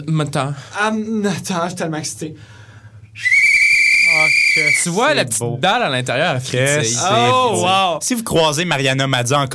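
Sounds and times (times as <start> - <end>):
speech: 0.0 - 2.6, 3.2 - 3.4, 4.6 - 9.5
pea whistle being blown: 3.2 - 5.0.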